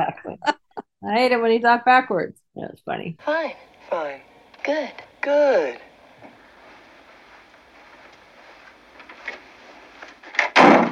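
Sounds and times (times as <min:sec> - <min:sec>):
speech: 0:01.1 - 0:05.9
door slamming shut: 0:10.3 - 0:10.8.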